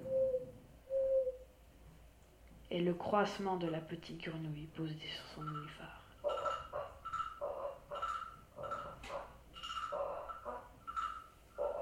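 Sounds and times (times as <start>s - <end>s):
old owl hooting at nightfall: 0.0s - 1.5s, 5.3s - 11.8s
speech: 2.7s - 6.0s.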